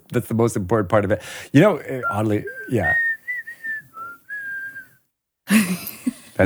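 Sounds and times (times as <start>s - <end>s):
speech: 0.1s - 3.0s, 5.6s - 6.4s
person whistling a rock song tune: 2.0s - 4.9s.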